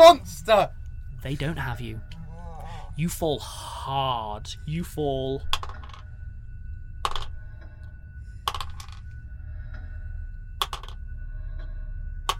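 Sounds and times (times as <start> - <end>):
steady low rumble: 0.0 - 12.3
speech: 0.1 - 2.2, 3.0 - 5.6
handfuls of dice clattering onto a table: 5.5 - 6.0, 7.0 - 7.3, 8.5 - 9.0, 10.6 - 11.0.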